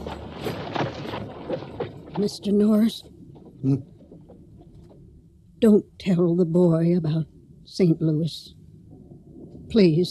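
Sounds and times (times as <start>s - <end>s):
horse hooves clip-clopping: 0.0s - 5.1s
steady low outdoor rumble: 0.0s - 10.0s
speech: 2.2s - 3.9s, 5.6s - 8.6s, 9.7s - 10.0s.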